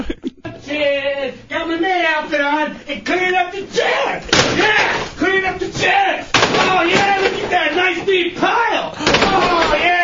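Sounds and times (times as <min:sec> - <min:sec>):
person talking: 0:00.5 - 0:10.0
wooden chairs being picked up and stacked during a clean-up: 0:04.3 - 0:10.0.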